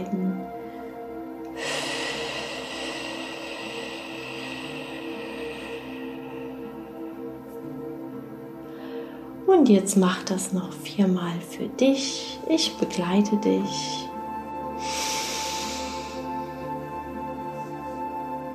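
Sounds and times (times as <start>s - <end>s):
quiet sustained tonal background: 0.0s - 18.5s
slow exhaling breath during meditation: 0.6s - 7.6s, 14.7s - 18.1s
speech: 9.6s - 14.1s.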